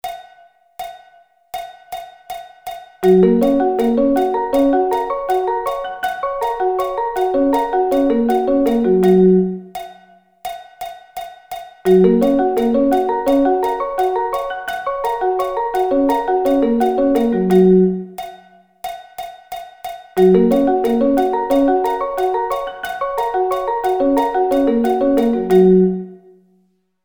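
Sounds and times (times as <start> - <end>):
G flat arpeggio inversions: 3.0 - 9.7, 11.9 - 18.2, 20.2 - 26.2.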